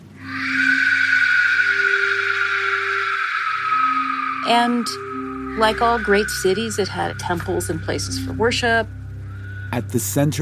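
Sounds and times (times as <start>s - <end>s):
Aztec warrior whistle shrill rasping scream: 0.2s - 10.0s
speech: 4.5s - 9.0s, 9.7s - 10.4s.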